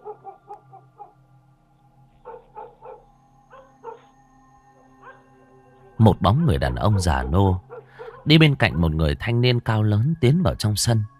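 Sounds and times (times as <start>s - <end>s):
dogs barking in a village at night: 0.0s - 1.2s, 2.2s - 4.1s, 4.9s - 5.3s, 6.6s - 8.5s
speech: 6.0s - 11.1s.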